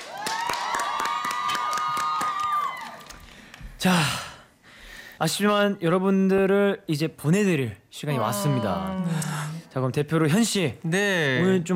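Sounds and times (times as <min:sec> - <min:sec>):
audience clapping: 0:00.0 - 0:03.8
speech: 0:03.8 - 0:04.2, 0:05.2 - 0:11.7.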